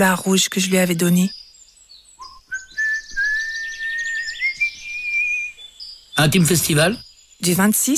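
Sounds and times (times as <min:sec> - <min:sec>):
speech: 0:00.0 - 0:01.4, 0:06.2 - 0:07.9
birds chirping and twittering: 0:00.0 - 0:07.9
person whistling a long steady note: 0:02.2 - 0:05.6.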